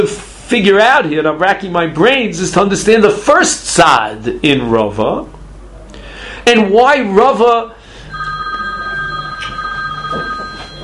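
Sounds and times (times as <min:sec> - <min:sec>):
speech: 0:00.0 - 0:05.3, 0:06.4 - 0:07.8
old-fashioned telephone bell ringing: 0:08.0 - 0:10.8.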